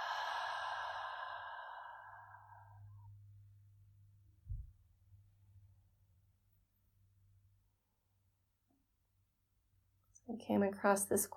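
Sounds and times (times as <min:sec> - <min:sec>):
long exhaled breath at the end of a guided breathing exercise: 0:00.0 - 0:03.1
soft low thump: 0:04.4 - 0:04.8
speech: 0:10.3 - 0:11.3.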